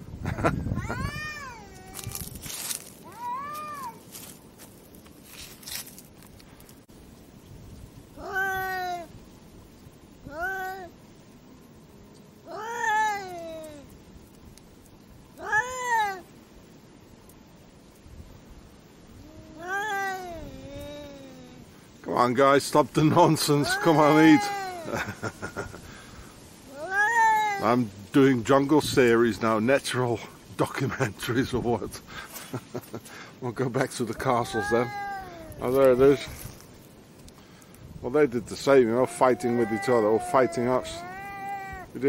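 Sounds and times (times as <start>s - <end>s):
speech: 0.4s - 1.0s, 22.2s - 25.4s, 27.6s - 35.0s, 35.6s - 36.4s, 38.0s - 41.1s
cats meowing while being fed: 0.7s - 4.0s, 8.2s - 9.1s, 10.2s - 11.0s, 12.4s - 13.9s, 15.4s - 16.3s, 19.2s - 21.6s, 23.2s - 25.0s, 26.7s - 27.8s, 34.1s - 36.6s, 38.7s - 42.0s
laughter: 24.8s - 25.9s.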